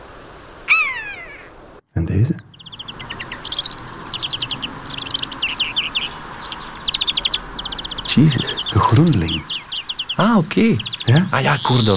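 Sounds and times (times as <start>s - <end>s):
common buzzard mewing call: 0.7s - 1.5s, 2.6s - 11.9s
speech: 2.0s - 2.6s, 8.2s - 9.5s, 10.2s - 11.9s.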